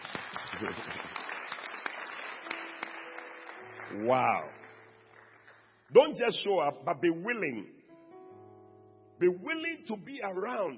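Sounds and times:
audience clapping: 0:00.0 - 0:06.2
speech: 0:00.6 - 0:01.2, 0:03.9 - 0:04.6, 0:05.9 - 0:07.8, 0:09.2 - 0:10.7.

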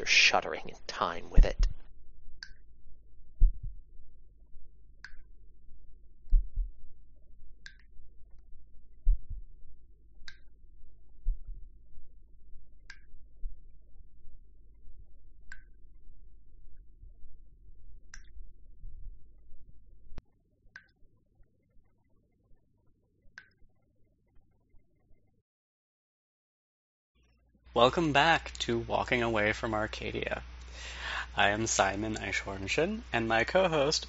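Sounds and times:
speech: 0:00.1 - 0:01.8, 0:27.8 - 0:34.0
slow deep heartbeat: 0:01.4 - 0:20.2.

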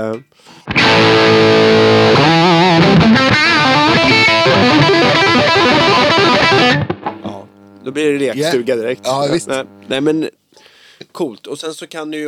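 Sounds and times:
speech: 0:00.0 - 0:02.3, 0:07.9 - 0:10.4, 0:11.0 - 0:12.2
heavily distorted electric guitar through an amp with boost: 0:00.7 - 0:10.0.

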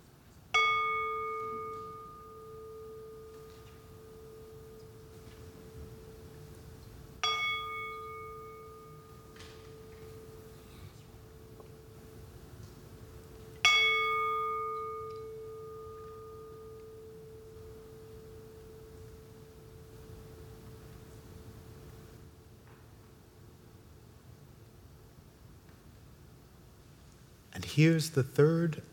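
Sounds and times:
bell ringing: 0:00.6 - 0:22.1
speech: 0:27.6 - 0:28.9.

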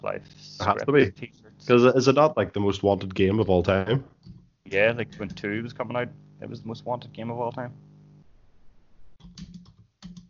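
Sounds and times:
speech: 0:00.0 - 0:07.8
faint hum: 0:00.0 - 0:10.2
computer keyboard typing: 0:09.2 - 0:10.2.

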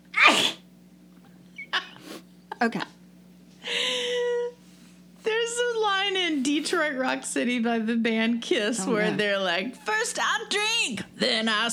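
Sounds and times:
faint steady hum: 0:00.0 - 0:11.7
loud sneeze: 0:00.1 - 0:00.7
speech: 0:00.3 - 0:00.6, 0:02.6 - 0:03.0, 0:06.6 - 0:11.7.

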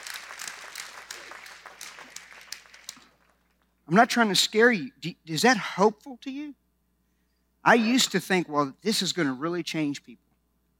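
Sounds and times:
audience applause: 0:00.0 - 0:03.5
speech: 0:03.9 - 0:06.6, 0:07.6 - 0:10.2.

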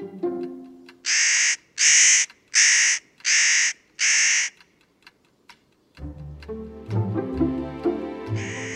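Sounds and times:
music: 0:00.0 - 0:01.0, 0:06.0 - 0:08.7
mountain bird giving loud harsh screeching calls: 0:01.1 - 0:04.6, 0:08.4 - 0:08.7.

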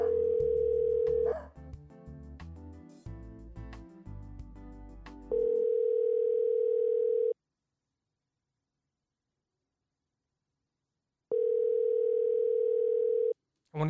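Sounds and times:
steady phone dial tone: 0:00.0 - 0:01.3, 0:05.3 - 0:07.4, 0:11.3 - 0:13.4.

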